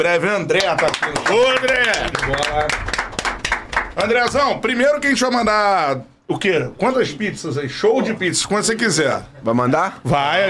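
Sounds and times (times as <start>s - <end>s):
speech: 0.0s - 2.9s, 4.0s - 10.4s
scattered clapping from a small group: 0.5s - 4.5s.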